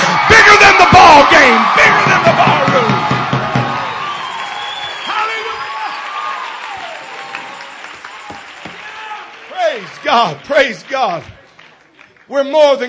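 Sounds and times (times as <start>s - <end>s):
large congregation screaming and cheering: 0.0s - 11.5s
large congregation clapping: 0.0s - 12.8s
whoops from a congregation: 3.6s - 9.3s
speech: 10.2s - 11.3s, 12.3s - 12.8s.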